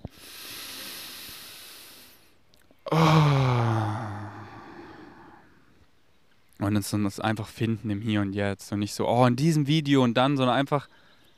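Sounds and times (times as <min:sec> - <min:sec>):
deep breath: 0:00.0 - 0:05.7
speech: 0:06.7 - 0:11.0.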